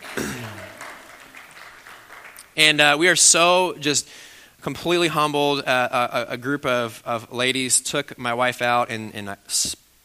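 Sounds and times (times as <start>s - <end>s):
audience clapping: 0.0s - 3.0s
speech: 2.6s - 10.0s.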